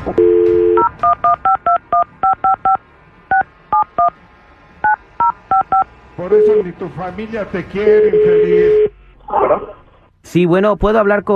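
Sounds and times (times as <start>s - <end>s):
speech: 0.1s - 0.3s, 1.0s - 1.6s, 6.2s - 8.9s, 10.3s - 11.3s
telephone dial tone: 0.2s - 1.4s
DTMF keypad beeps of a telephone number being dialed long-distance: 0.2s - 4.1s, 4.8s - 5.9s.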